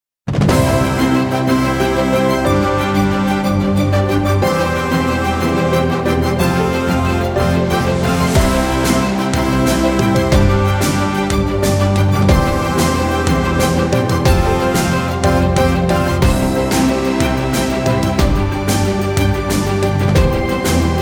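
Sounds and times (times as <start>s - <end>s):
victory champion winner music: 0.5s - 21.0s.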